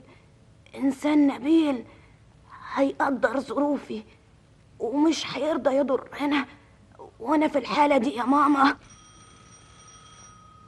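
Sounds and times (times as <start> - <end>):
speech: 0.7 - 2.0, 2.8 - 4.2, 4.8 - 6.6, 7.2 - 8.9
doorbell ringing in a home: 8.8 - 10.6.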